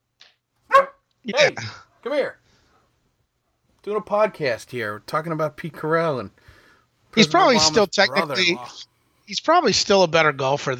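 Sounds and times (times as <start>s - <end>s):
dog barking: 0.7s - 1.0s
faint high yip: 0.7s - 1.0s
speech: 1.2s - 2.4s, 3.8s - 10.7s.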